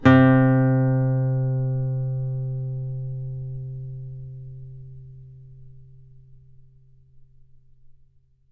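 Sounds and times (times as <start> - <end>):
acoustic guitar playing note C4: 0.0 - 7.4.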